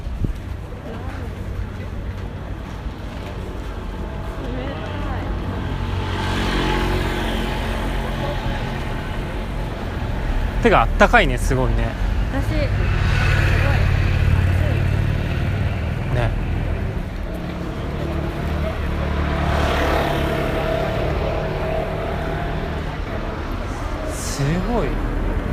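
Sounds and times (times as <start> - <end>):
car traffic rumbling along a busy city street in Shibuya: 0.0 - 25.5
vehicles whooshing past: 0.9 - 25.5
speech: 10.6 - 13.4, 24.7 - 25.1.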